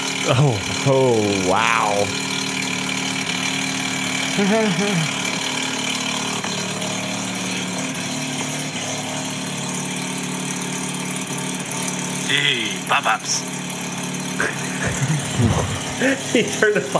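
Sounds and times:
12A rotary engine of a snow-covered 1985 FB car idling: 0.0 - 16.9
speech: 0.2 - 2.3, 4.4 - 5.2, 12.3 - 13.6, 14.4 - 16.9
laughter: 0.3 - 0.7, 4.4 - 5.2, 14.4 - 16.9
voice exclamation: 0.3 - 2.1, 4.4 - 5.1, 14.4 - 16.3.

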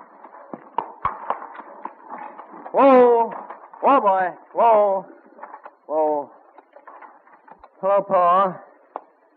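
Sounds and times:
sharp wooden clacks and knocks of old pasture gate: 0.0 - 4.6, 5.2 - 7.8
speech: 3.9 - 5.2, 7.8 - 8.7.

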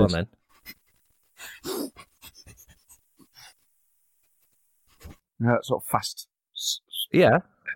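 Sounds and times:
speech: 0.0 - 0.8, 5.4 - 7.5
person huffing: 1.4 - 3.6
person imitating a dog's quick sniffing: 1.4 - 3.6.

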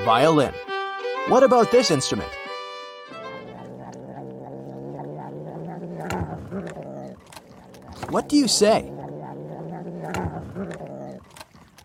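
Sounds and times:
speech: 0.0 - 2.4, 8.1 - 9.0
cat purring: 3.1 - 11.8.

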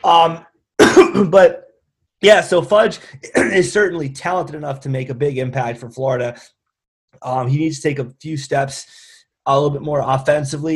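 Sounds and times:
speech: 0.0 - 10.7
man with COVID clearing his throat: 0.8 - 1.5, 3.2 - 3.7.

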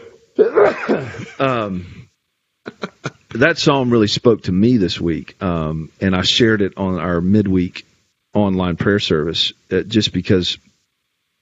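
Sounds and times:
person sneezing: 0.0 - 2.0
speech: 0.6 - 2.1, 2.7 - 10.7.

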